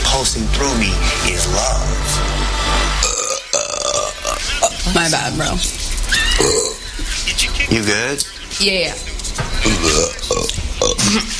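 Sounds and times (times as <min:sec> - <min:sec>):
speech: 0:00.2 - 0:02.6, 0:05.0 - 0:11.3
person burping: 0:03.0 - 0:04.8, 0:06.4 - 0:06.8, 0:09.7 - 0:11.3.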